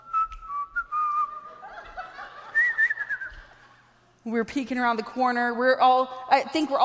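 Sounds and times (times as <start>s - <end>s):
man whistling a jaunty tune: 0.0s - 1.4s, 2.6s - 3.4s
laughter: 1.3s - 2.8s
speech: 4.2s - 6.8s.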